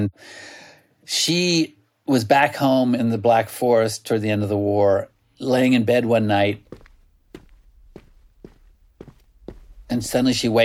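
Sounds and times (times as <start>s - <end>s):
speech: 0.0s - 6.8s, 9.9s - 10.6s
footsteps on a hard sidewalk: 5.9s - 10.6s.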